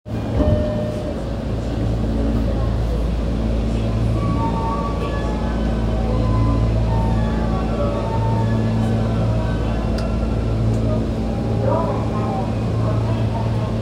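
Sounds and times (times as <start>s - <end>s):
Marunouchi Line Shinjuku-gyoemmae station west exit ambience: 0.0s - 13.8s.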